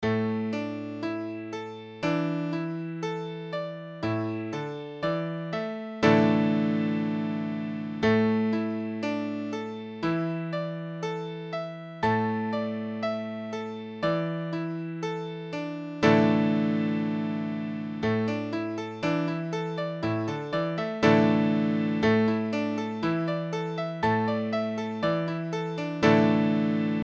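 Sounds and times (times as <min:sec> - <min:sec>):
Asus4 piano chord: 0:00.0 - 0:27.0.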